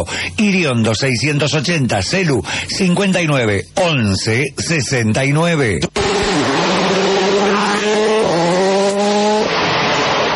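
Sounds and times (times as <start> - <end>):
speech: 0.0 - 6.1
rally car engine revving through gear shifts while accelerating past: 5.9 - 10.3.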